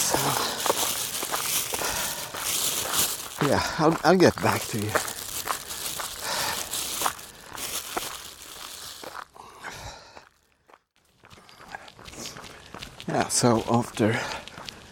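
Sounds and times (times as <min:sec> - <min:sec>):
plastic biscuit wrapper crinkling: 0:00.0 - 0:09.3
biscuit being bitten and chewed: 0:00.0 - 0:09.4
speech: 0:03.5 - 0:05.1, 0:13.1 - 0:14.4.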